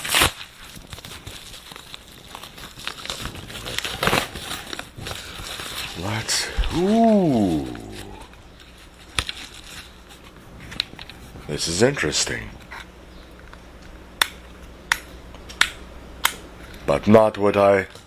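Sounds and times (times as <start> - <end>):
edge of fairly heavy packaging tearing open: 0.0 - 6.8
speech: 6.0 - 7.8, 11.5 - 12.6, 16.9 - 18.0.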